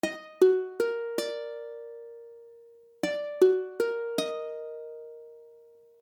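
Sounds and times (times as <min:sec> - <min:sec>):
Ebmaj7 chord on ukulele: 0:00.0 - 0:06.0.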